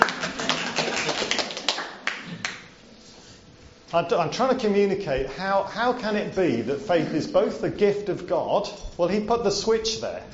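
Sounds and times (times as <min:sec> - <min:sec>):
small group applauding: 0:00.0 - 0:02.8
speech: 0:03.9 - 0:10.3.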